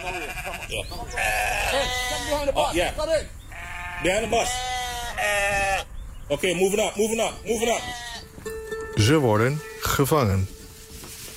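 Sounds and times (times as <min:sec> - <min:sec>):
sheep bleating loose in a town hall garden: 0:00.0 - 0:02.6, 0:03.5 - 0:06.0, 0:07.4 - 0:08.4
speech: 0:00.0 - 0:03.4, 0:04.0 - 0:08.0, 0:09.0 - 0:10.6.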